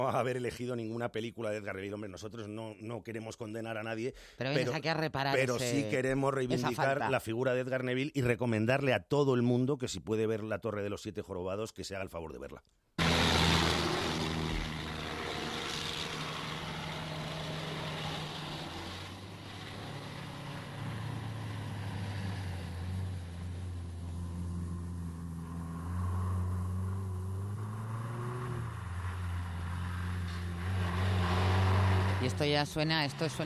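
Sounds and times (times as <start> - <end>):
speech: 0.0 - 12.9, 32.4 - 33.4
Jeep engine driving along a dusty road: 13.0 - 33.4
broadband road noise: 13.0 - 33.4.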